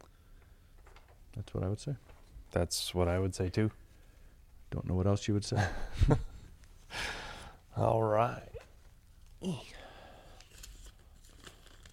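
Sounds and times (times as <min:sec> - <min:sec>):
speech: 0:01.4 - 0:03.8, 0:04.7 - 0:06.3, 0:07.8 - 0:08.5, 0:09.4 - 0:09.8
big pieces of paper rustling and crinkling: 0:10.4 - 0:11.9.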